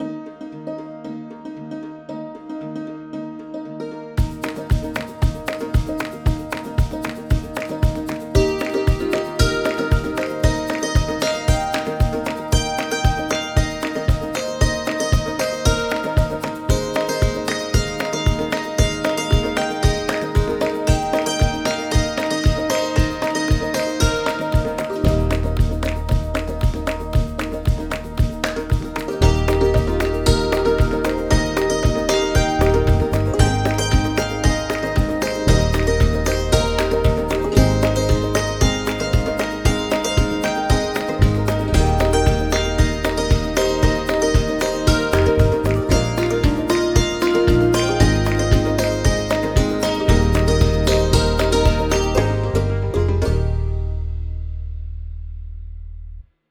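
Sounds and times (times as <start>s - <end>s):
hammered dulcimer: 0.0s - 54.6s.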